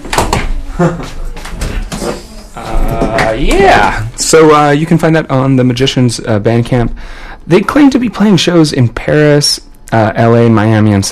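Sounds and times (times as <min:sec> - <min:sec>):
door being pushed shut: 0:00.0 - 0:04.0
indistinct voices: 0:00.7 - 0:04.2
speech: 0:00.8 - 0:01.3, 0:02.0 - 0:11.1.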